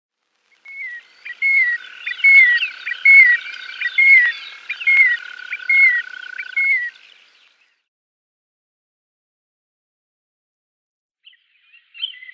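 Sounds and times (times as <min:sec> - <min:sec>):
marsh sandpiper display song whistle: 0:00.6 - 0:07.0.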